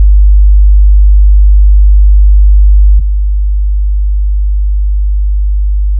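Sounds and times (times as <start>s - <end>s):
50Hz low-frequency tone: 0.0s - 5.9s.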